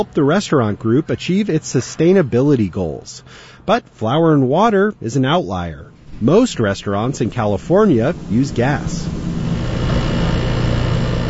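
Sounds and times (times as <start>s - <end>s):
speech: 0.0s - 9.2s
lab equipment calibrating gas stove emission sensors in a Stanford University lab: 5.3s - 11.2s.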